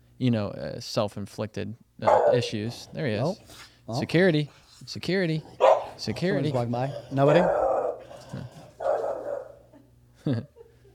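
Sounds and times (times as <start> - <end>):
low steady hum: 0.0 - 10.9
speech: 0.2 - 7.6, 10.2 - 10.5
dog barking: 2.0 - 3.4, 5.5 - 9.7.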